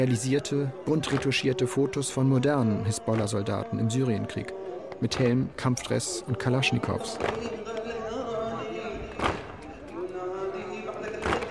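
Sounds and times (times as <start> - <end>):
speech: 0.0 - 8.0
many male voices chanting together: 0.0 - 11.4
men beating their chests in mourning: 7.2 - 7.9, 9.1 - 9.7, 11.0 - 11.4.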